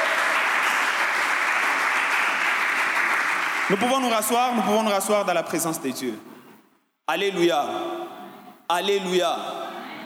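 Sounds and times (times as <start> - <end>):
church congregation applauding during a service: 0.0 - 5.2
speech: 3.7 - 6.3, 7.1 - 8.0, 8.7 - 9.6.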